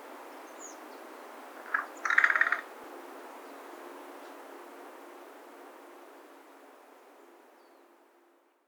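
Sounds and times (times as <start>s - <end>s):
American crow Corvus brachyrhynchos cawing: 1.6s - 2.7s.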